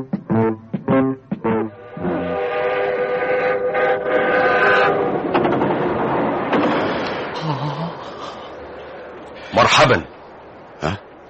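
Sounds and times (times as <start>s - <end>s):
train travelling on rails, radio drama effect: 0.1s - 10.8s
speech: 9.7s - 10.1s.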